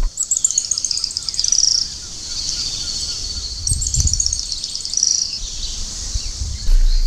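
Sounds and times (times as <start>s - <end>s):
araucaria tit-spinetail trilling song: 0.0s - 7.0s
low rumble: 6.2s - 7.0s.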